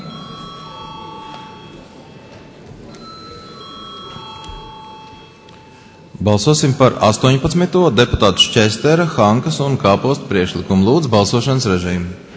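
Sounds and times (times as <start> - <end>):
electric bell ringing in a parliament chamber before a vote: 0.0 - 2.1, 2.9 - 6.1
low murmur of room noise in a parliament chamber: 0.0 - 12.3
speech: 6.2 - 12.3.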